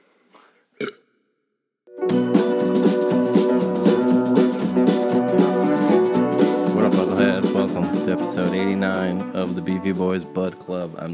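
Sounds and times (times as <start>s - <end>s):
burp: 0.0s - 1.1s
speech: 0.8s - 1.0s, 8.1s - 11.1s
upbeat music: 2.0s - 11.1s.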